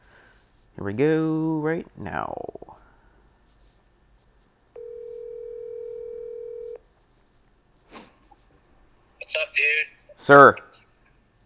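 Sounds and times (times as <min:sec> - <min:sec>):
soft rustle: 0:00.0 - 0:01.6, 0:02.7 - 0:11.4
speech: 0:00.8 - 0:02.8, 0:10.3 - 0:10.7
electronic ringback tone from an outgoing phone call: 0:04.8 - 0:06.8.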